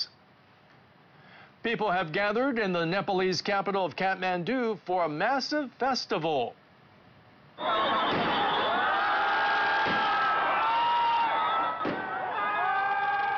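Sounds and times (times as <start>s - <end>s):
speech: 1.6s - 6.6s, 7.6s - 7.9s
large festival crowd roaring and cheering in a city square in Kathmandu: 7.6s - 13.3s
sharp bangs: 8.0s - 8.8s, 9.7s - 10.3s, 11.8s - 12.2s.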